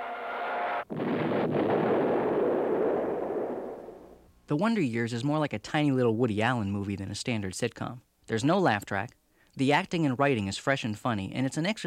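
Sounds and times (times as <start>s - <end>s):
sitcom bomb dropping and exploding sound effect: 0.0s - 4.2s
speech: 4.5s - 11.8s.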